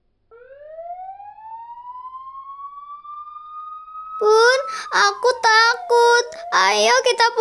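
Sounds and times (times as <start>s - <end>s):
ambulance siren wailing: 0.3s - 7.3s
speech: 4.2s - 7.3s.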